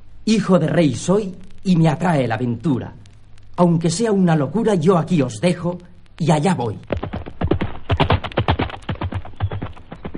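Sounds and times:
speech: 0.2s - 3.0s, 3.6s - 7.0s
galloping horse hoofbeats: 6.9s - 10.1s.

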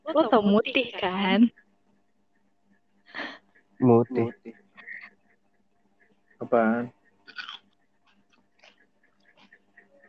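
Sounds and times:
speech: 0.1s - 1.6s, 3.8s - 4.6s, 6.4s - 7.0s
crunchy chewing of raw kencur root: 7.2s - 10.0s.

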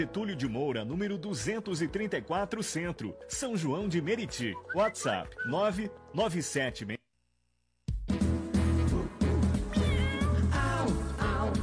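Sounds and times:
loud upbeat music: 0.0s - 6.9s, 7.9s - 11.6s
speech: 0.0s - 7.0s
cat meowing: 9.7s - 10.4s.

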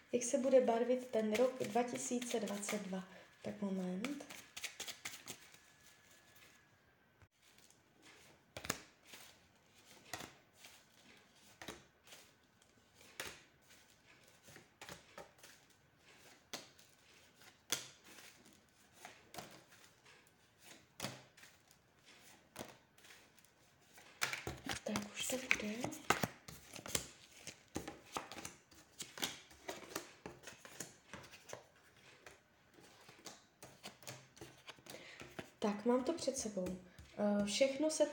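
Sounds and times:
speech: 0.1s - 4.4s, 35.8s - 38.1s
playing cards being shuffled during a yearly card reading: 0.6s - 2.9s, 3.5s - 6.5s, 7.4s - 37.9s.

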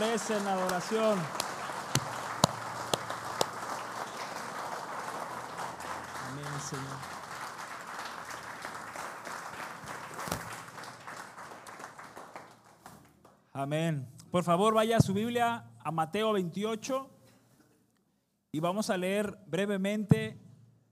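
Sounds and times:
speech: 0.0s - 1.4s, 6.7s - 7.1s, 13.6s - 17.1s, 18.5s - 20.4s
large audience at a worship gathering applauding: 0.0s - 13.4s.

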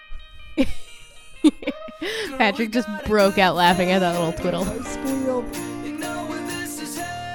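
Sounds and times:
speech: 0.6s - 0.8s, 2.2s - 5.7s
full sustained pop arrangement: 1.7s - 7.3s
bright jingle bells shaking in a song's background: 2.8s - 7.3s.

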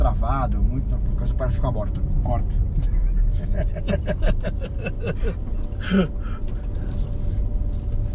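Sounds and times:
car engine and road rumble heard from inside the cabin: 0.0s - 8.1s
speech: 0.4s - 6.6s
people laughing: 2.8s - 6.1s.

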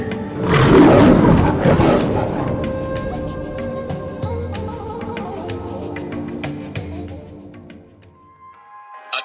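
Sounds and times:
lion roaring in a perfume advertisement: 0.3s - 4.2s.

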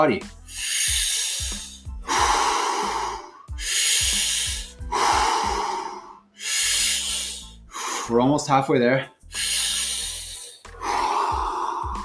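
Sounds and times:
speech: 0.0s - 0.8s, 8.1s - 9.2s
deep breaths drawn in during a breathing exercise: 0.4s - 8.1s, 9.3s - 12.0s.

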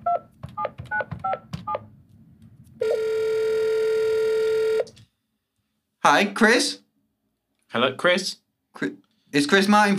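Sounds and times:
loud buzzy telephone ring tone: 2.8s - 4.9s
speech: 6.0s - 6.8s, 7.7s - 9.9s.

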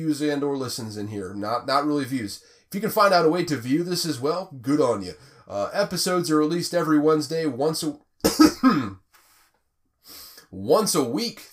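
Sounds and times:
speech: 0.0s - 9.0s, 10.5s - 11.5s
throat clearing with a low growling voiced tone: 8.2s - 9.0s.

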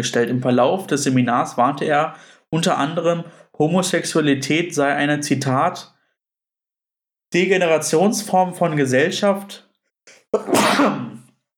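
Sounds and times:
speech: 0.0s - 5.9s, 7.3s - 9.6s, 10.3s - 11.1s
person sneezing: 10.1s - 11.3s.

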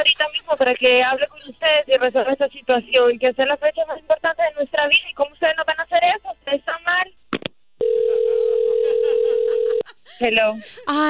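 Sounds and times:
speech: 0.0s - 7.0s, 10.2s - 11.0s
telephone dial tone after call drops: 7.8s - 9.8s.

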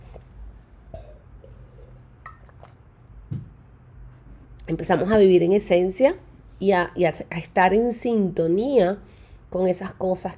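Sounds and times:
person sipping water: 0.0s - 3.2s
low steady room hum: 0.0s - 10.3s
soft swallow: 0.9s - 2.9s
faint wet mouth sounds: 1.0s - 3.1s
speech: 4.7s - 10.3s.

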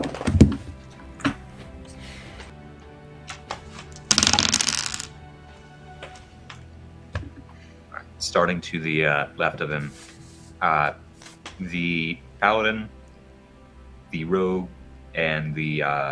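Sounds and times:
tabletop role-playing game dice clacking as they are picked up: 4.1s - 5.1s
speech: 8.3s - 10.0s, 10.6s - 11.0s, 11.6s - 13.0s, 14.1s - 16.1s.

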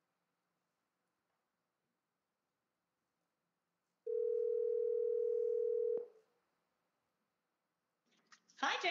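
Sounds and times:
phone call ringing tone from a smartwatch: 4.1s - 6.1s.

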